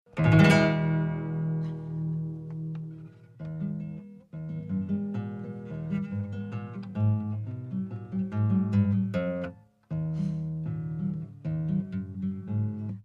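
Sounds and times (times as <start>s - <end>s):
acoustic guitar practice: 0.1s - 13.0s.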